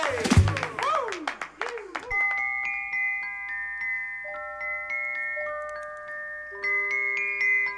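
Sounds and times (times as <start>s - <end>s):
people whooping: 0.0s - 2.3s
people clapping: 0.0s - 2.4s
music box notes chiming: 2.1s - 7.7s.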